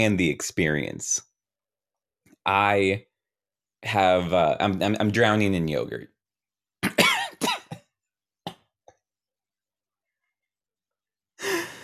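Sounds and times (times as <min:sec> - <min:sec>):
speech: 0:00.0 - 0:01.3, 0:02.4 - 0:03.1, 0:03.8 - 0:06.1
person coughing hard: 0:06.8 - 0:07.9
breathy exhale: 0:11.4 - 0:11.8.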